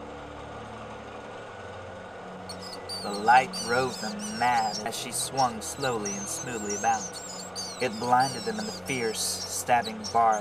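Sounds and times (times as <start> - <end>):
rotary motor starting and running: 2.2 - 10.3
speech: 3.0 - 10.3.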